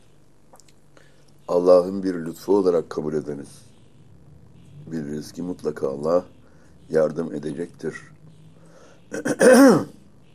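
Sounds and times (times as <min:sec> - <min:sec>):
speech: 0:01.5 - 0:03.7, 0:04.9 - 0:08.2, 0:09.1 - 0:10.0
man clearing his throat: 0:09.1 - 0:10.0
man coughing with a voiced rasping hack: 0:09.1 - 0:10.0.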